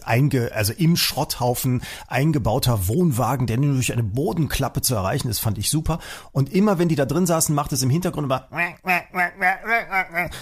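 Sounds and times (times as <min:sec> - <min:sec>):
speech: 0:00.0 - 0:10.4
person imitating parrot squawks: 0:08.5 - 0:10.4.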